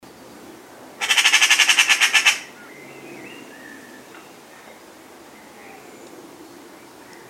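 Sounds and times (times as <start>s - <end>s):
Eurasian magpie Pica pica harsh grating rattle: 1.0s - 2.5s.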